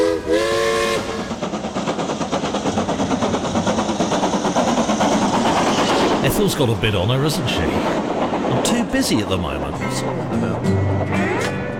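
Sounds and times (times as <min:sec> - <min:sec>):
steam train whistle: 0:00.0 - 0:01.4
steam engine chuffing with puffs and clanks: 0:00.0 - 0:11.4
speech: 0:06.4 - 0:08.0, 0:08.6 - 0:11.2.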